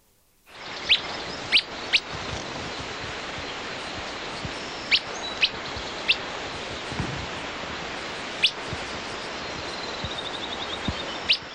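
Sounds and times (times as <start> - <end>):
Willow Flycatcher whit calls in Grand Canyon beside the Colorado River: 0.5 - 2.3, 4.5 - 6.3, 8.4 - 8.6
rushing background noise beside the Colorado River: 0.5 - 11.5.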